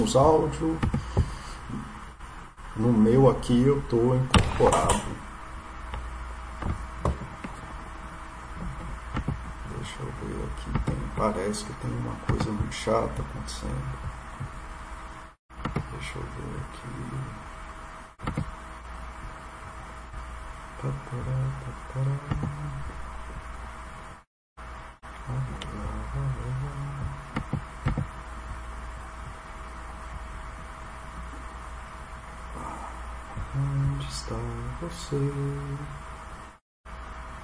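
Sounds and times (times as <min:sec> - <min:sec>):
speech: 0:00.0 - 0:01.0, 0:02.8 - 0:05.2, 0:11.2 - 0:14.1, 0:20.8 - 0:22.6, 0:35.1 - 0:35.9
constant electrical hum: 0:00.0 - 0:37.4
fan whirring close to microphone: 0:00.0 - 0:37.4.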